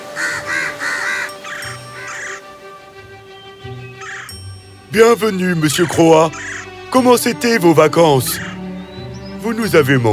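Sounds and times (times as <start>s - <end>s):
crows cawing as they gather around a nest: 0.0s - 2.6s, 4.0s - 4.4s, 6.3s - 6.8s, 8.2s - 8.8s
speech: 4.9s - 8.5s, 9.4s - 10.1s.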